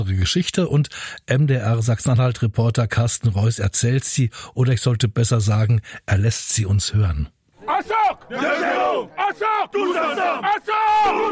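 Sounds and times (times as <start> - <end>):
speech: 0.0 - 11.3
veterans football team chanting a battle cry on a village football pitch: 7.6 - 11.3.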